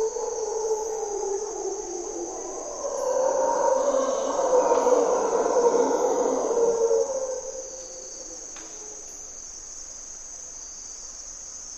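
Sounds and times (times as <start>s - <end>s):
mantled howler monkeys roaring in hardwood forest, Costa Rica: 0.0s - 9.0s
shrill insect hum: 0.0s - 11.7s.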